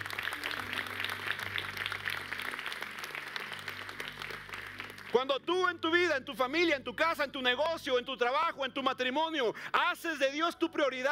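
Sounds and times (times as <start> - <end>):
crowd applauding: 0.0 - 5.5
speech: 5.1 - 11.0.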